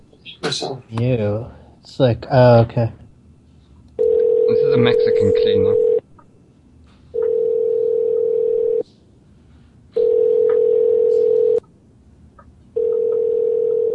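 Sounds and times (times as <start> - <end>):
speech: 0.2 - 3.0, 4.7 - 5.9
telephone hang-up tone: 4.0 - 4.5, 7.2 - 8.8, 10.0 - 11.6, 12.8 - 13.9.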